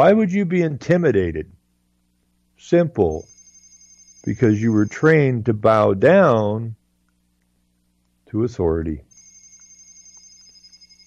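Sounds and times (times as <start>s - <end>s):
speech: 0.0s - 1.6s, 2.6s - 3.3s, 4.2s - 6.8s, 8.3s - 9.1s
phone ringing with a steady high electronic tone: 3.0s - 5.2s, 9.1s - 11.0s
soft ticking pulses: 3.0s - 5.4s, 9.1s - 11.0s.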